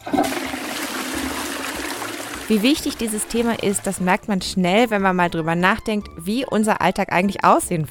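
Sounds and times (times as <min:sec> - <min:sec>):
toilet flushing with a loud churning rush of water: 0:00.0 - 0:04.2
speech: 0:02.5 - 0:07.8.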